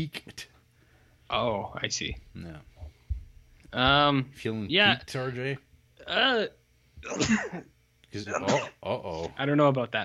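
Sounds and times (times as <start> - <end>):
speech: 0.0 - 0.5, 1.3 - 2.7, 3.7 - 10.0
person sneezing loudly: 7.0 - 7.6, 8.3 - 9.4.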